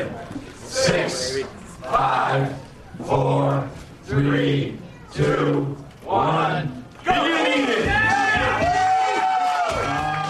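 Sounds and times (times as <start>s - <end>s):
speech: 0.8s - 6.8s
crowd of onlookers cheering and shouting at an eating contest start: 7.0s - 10.2s.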